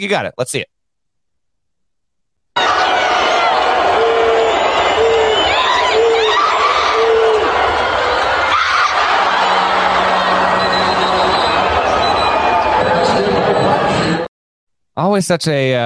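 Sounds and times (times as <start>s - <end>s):
speech: 0.0s - 0.7s, 15.0s - 15.8s
packed basketball arena crowd cheering and shouting: 2.6s - 14.3s
steady low buzzer tone: 9.7s - 12.4s.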